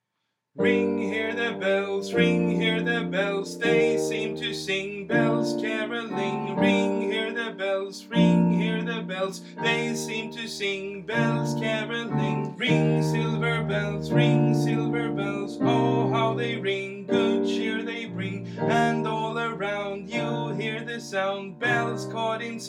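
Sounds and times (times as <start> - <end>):
soprano singing a carol: 0.6 - 22.6.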